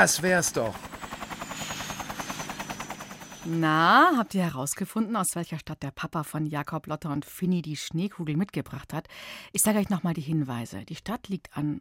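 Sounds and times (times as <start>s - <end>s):
speech: 0.0s - 1.1s, 3.4s - 11.7s
helicopter turbine whining: 0.0s - 4.4s
helicopter rotor blades thumping: 0.0s - 4.6s.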